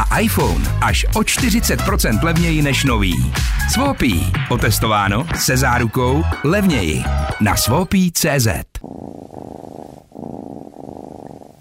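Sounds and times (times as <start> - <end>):
speech: 0.2 - 9.1
cat purring: 8.8 - 11.5.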